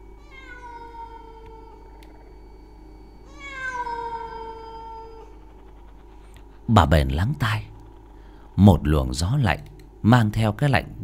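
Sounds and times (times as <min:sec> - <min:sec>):
faint low hum: 0:00.0 - 0:11.0
stray cat yowling at night: 0:00.2 - 0:01.9, 0:03.2 - 0:05.5
speech: 0:06.7 - 0:07.7, 0:08.6 - 0:11.0.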